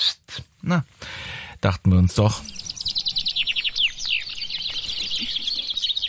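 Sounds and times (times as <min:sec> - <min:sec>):
speech: 0:00.7 - 0:02.6
several chaffinches singing in chorus: 0:02.2 - 0:06.0.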